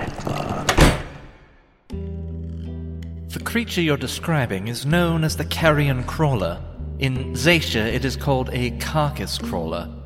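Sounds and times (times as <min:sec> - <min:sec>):
heavy door yanked shut by its handle slamming: 0:00.0 - 0:01.6
speech: 0:03.4 - 0:10.0.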